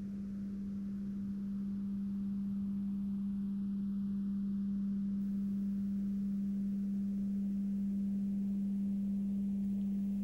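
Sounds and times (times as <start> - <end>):
simple clear pure tone played into one ear: 0.0 - 10.2
soft hiss: 0.0 - 10.2.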